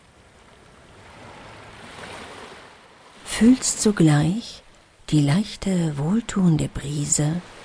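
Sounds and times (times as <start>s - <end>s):
gentle ocean surf: 0.0s - 7.6s
speech: 3.4s - 7.6s.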